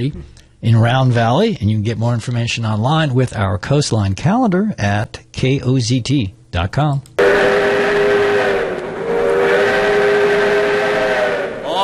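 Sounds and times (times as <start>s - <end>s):
speech: 0.0s - 7.6s
steam train whistle blasts: 7.2s - 11.8s.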